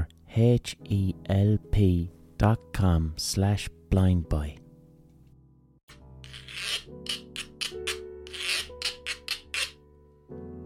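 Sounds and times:
speech: 0:00.4 - 0:04.6
guiro scraping in rhythmic strokes: 0:06.2 - 0:09.8.

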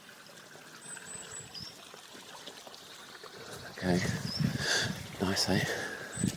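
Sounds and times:
babbling brook water gurgling and splashing over stones: 0:00.0 - 0:06.3
speech: 0:03.8 - 0:06.3.

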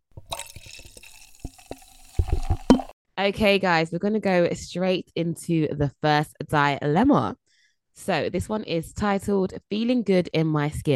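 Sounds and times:
drink pouring into a glass: 0:00.1 - 0:02.9
liquid dripping into a glass: 0:00.1 - 0:02.9
speech: 0:03.2 - 0:07.4, 0:08.0 - 0:10.9.

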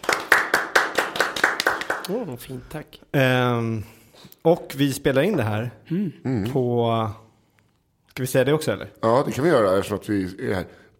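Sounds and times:
people clapping hands to welcome a guest: 0:00.0 - 0:02.5
speech: 0:02.1 - 0:07.2, 0:08.2 - 0:10.9.

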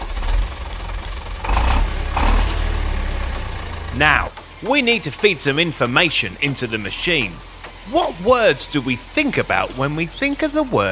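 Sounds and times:
engine starting and idling: 0:00.0 - 0:10.8
speech: 0:04.0 - 0:10.8.

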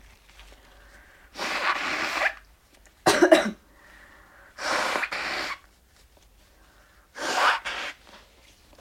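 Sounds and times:
person blowing their nose: 0:01.3 - 0:02.4, 0:04.6 - 0:05.8, 0:07.1 - 0:08.2.

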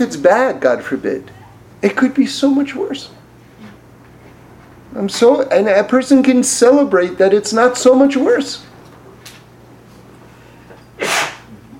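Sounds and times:
speech: 0:00.0 - 0:03.2, 0:04.9 - 0:08.7
faint room hum: 0:00.0 - 0:11.7
person sneezing: 0:11.0 - 0:11.7.

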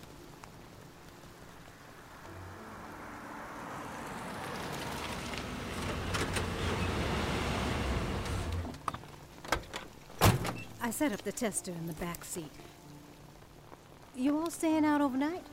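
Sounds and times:
truck engine rumbling as it pulls up: 0:01.9 - 0:08.9
speech: 0:10.9 - 0:12.8, 0:14.2 - 0:15.5.

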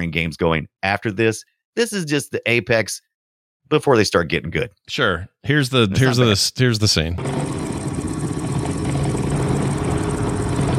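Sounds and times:
speech: 0:00.0 - 0:03.1, 0:03.7 - 0:07.7
motorcycle engine running: 0:07.2 - 0:10.7.

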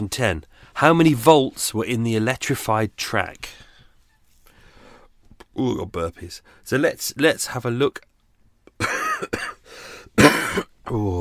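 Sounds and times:
speech: 0:00.0 - 0:03.7, 0:05.6 - 0:08.1, 0:08.8 - 0:11.1
person coughing harshly: 0:08.8 - 0:09.6, 0:10.2 - 0:10.8.

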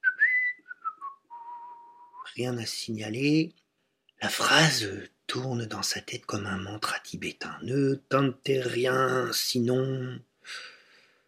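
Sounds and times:
man whistling a short melodic tune: 0:00.0 - 0:02.3
speech: 0:02.3 - 0:03.6, 0:04.2 - 0:10.7.

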